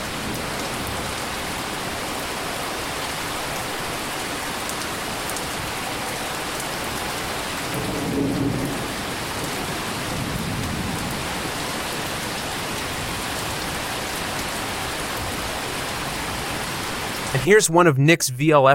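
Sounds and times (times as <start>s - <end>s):
steady dense rainfall outside kitchen window: 0.0s - 17.5s
thunder rumbling: 7.6s - 11.9s
speech: 17.4s - 18.7s.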